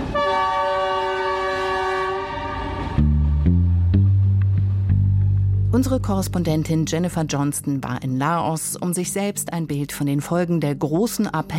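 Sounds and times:
high-speed train horn: 0.0 - 3.4
high-speed train rushing past in Laos: 0.0 - 5.4
speech: 5.8 - 11.5.

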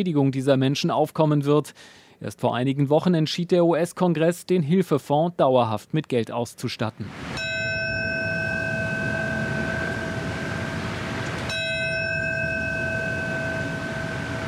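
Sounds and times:
speech: 0.0 - 7.5
low rumbling background: 7.1 - 14.4
large memorial bell tolling: 7.4 - 14.4.

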